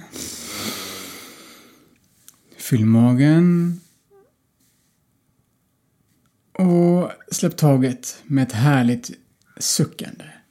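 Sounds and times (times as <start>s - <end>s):
deep inhale through the nose during a breathing exercise: 0.0s - 2.4s
speech: 2.7s - 3.8s, 6.6s - 10.4s.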